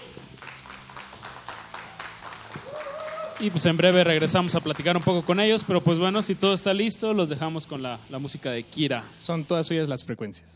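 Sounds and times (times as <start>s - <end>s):
audience applause: 0.0s - 6.0s
speech: 3.4s - 10.5s.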